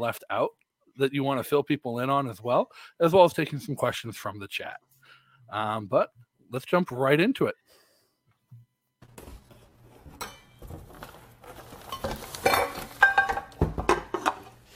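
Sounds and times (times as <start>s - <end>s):
speech: 0.0s - 4.9s, 5.5s - 7.8s
metal pots and pans clattering while being unpacked: 10.0s - 14.6s.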